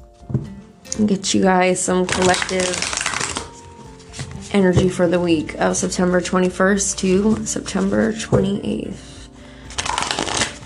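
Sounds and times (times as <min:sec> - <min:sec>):
speech: 0:00.3 - 0:03.0, 0:04.5 - 0:09.1
tarot cards being shuffled by hand: 0:02.0 - 0:04.5, 0:09.7 - 0:10.6.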